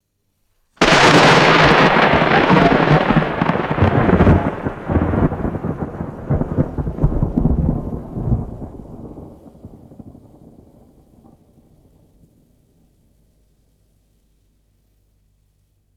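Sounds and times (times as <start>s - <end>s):
sharp thunder crack: 0.8s - 10.3s.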